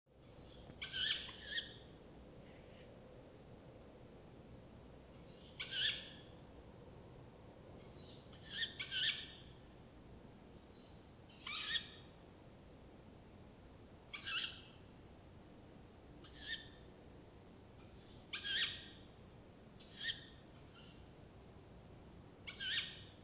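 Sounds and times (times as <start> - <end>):
tawny owl calling: 0.2 - 1.9, 5.2 - 6.3, 7.8 - 9.5, 10.6 - 12.1, 14.1 - 14.8, 16.2 - 16.9, 17.8 - 19.0, 19.8 - 21.1, 22.4 - 23.2.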